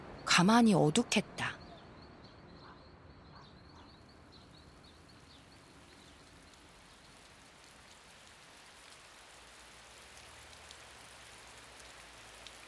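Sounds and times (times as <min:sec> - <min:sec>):
speech: 0:00.4 - 0:01.6
faint bird calls or quacks: 0:01.6 - 0:06.6
steady rain falling on surfaces: 0:04.1 - 0:12.6.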